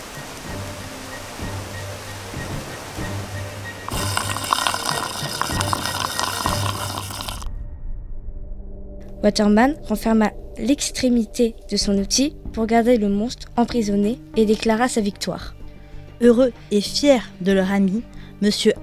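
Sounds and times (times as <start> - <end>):
strong jet of water gushing from a hose: 3.9 - 7.5
speech: 9.2 - 15.6, 16.2 - 18.8.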